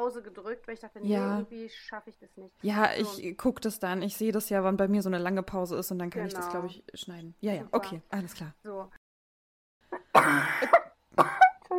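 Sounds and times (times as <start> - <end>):
speech: 0.0 - 9.0, 10.1 - 11.4
short coughing burst: 10.0 - 11.6
sneeze blended with a harsh cough: 10.2 - 11.4.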